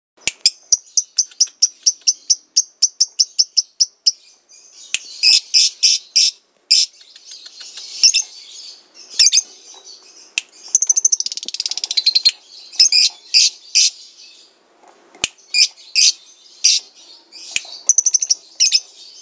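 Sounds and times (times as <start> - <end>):
lovebird song: 0.2 - 14.6, 15.2 - 19.2.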